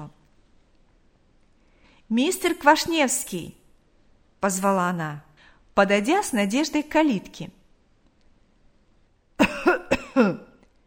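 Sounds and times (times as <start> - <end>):
speech: 2.1 - 3.6, 4.4 - 7.6, 10.2 - 10.4
elderly man coughing: 9.4 - 10.6.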